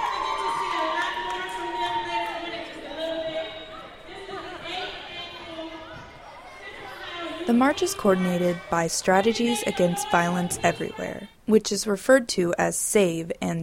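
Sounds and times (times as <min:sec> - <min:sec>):
crowd of students and parents chattering in a reverberant gymnasium: 0:00.1 - 0:11.4
speech: 0:07.5 - 0:13.6.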